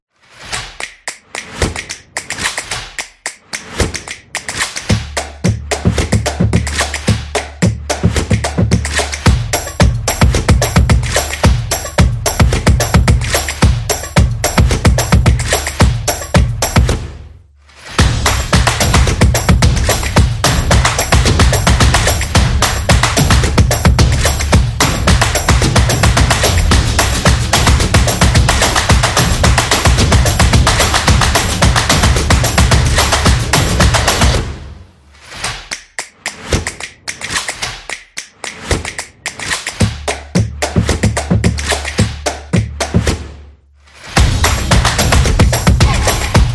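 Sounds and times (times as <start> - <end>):
hand clap: 0.3 - 17.1, 17.9 - 34.5, 35.2 - 43.4, 44.0 - 46.5
drum: 4.8 - 17.2, 18.0 - 34.6, 39.8 - 43.3, 44.2 - 46.5.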